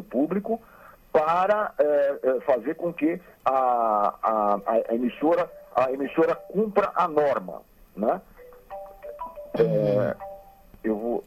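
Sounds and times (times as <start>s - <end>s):
speech: 0.0s - 8.3s, 9.6s - 11.2s
mobile phone ringing with a short electronic melody: 5.2s - 7.5s, 8.3s - 10.8s.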